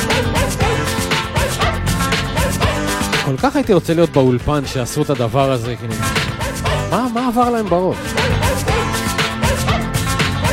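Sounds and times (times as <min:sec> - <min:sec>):
musical track of dog barks played like a synthesizer: 0:00.0 - 0:03.3, 0:06.0 - 0:10.5
steady bass notes: 0:00.0 - 0:10.5
speech: 0:03.3 - 0:08.6.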